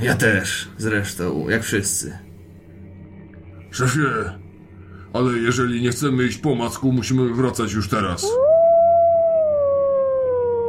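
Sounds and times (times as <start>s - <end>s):
speech: 0.0s - 2.3s, 3.7s - 4.4s, 5.1s - 8.5s
wolf howling: 8.2s - 10.6s.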